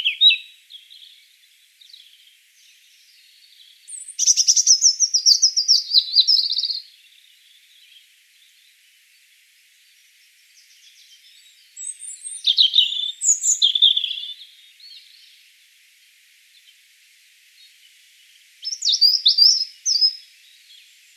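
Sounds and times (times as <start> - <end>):
European robin Erithacus rubecula song: 0.0 - 15.6, 17.5 - 21.1.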